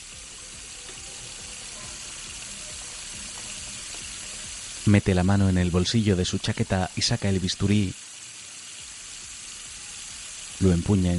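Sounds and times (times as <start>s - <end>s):
water running from a tap at a washbasin in a public restroom: 0.0s - 11.1s
speech: 4.9s - 8.0s, 10.6s - 11.1s.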